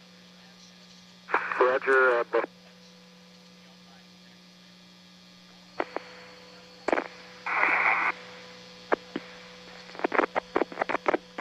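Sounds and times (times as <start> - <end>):
steady low mains hum: 0.0 - 11.3
radio static clicks and pops on a space shuttle link: 1.3 - 2.5, 5.8 - 6.2, 6.8 - 8.2, 8.9 - 11.3
radio static hiss on a space shuttle link to mission control: 1.3 - 2.6, 5.5 - 11.3
speech: 1.6 - 2.6.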